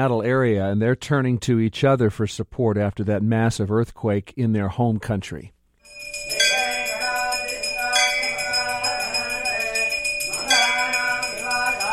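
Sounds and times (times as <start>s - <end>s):
speech: 0.0s - 5.6s
bells ringing at a Nepalese temple gathering: 5.9s - 11.9s.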